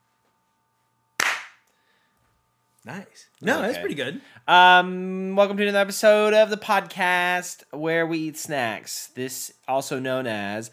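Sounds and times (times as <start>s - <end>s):
single sharp hand clap: 1.2s - 1.7s
speech: 2.8s - 10.7s.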